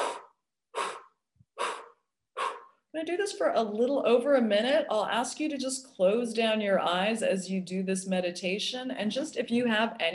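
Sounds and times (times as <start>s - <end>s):
breath of fire yogic rapid breathing through the nose: 0.0s - 2.8s
speech: 3.0s - 10.1s.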